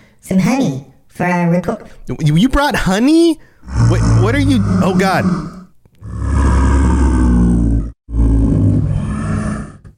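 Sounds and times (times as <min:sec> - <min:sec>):
speech: 0:00.3 - 0:05.6
bear roaring: 0:03.6 - 0:09.9.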